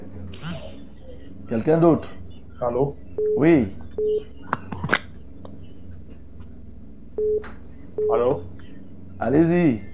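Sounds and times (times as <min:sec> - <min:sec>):
speech: 0:01.5 - 0:04.3, 0:07.3 - 0:08.5, 0:09.2 - 0:09.9
short steady telephone beeps: 0:07.2 - 0:07.4, 0:08.0 - 0:08.2.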